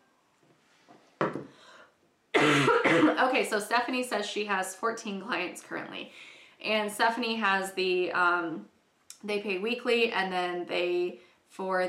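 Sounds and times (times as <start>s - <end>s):
person coughing harshly: 2.4s - 3.4s
speech: 2.6s - 11.8s.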